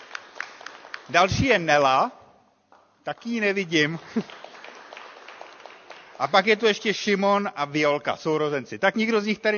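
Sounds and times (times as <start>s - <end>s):
audience applauding: 0.0s - 1.7s, 3.1s - 7.0s
speech: 1.1s - 2.2s, 3.0s - 4.4s, 6.2s - 9.5s.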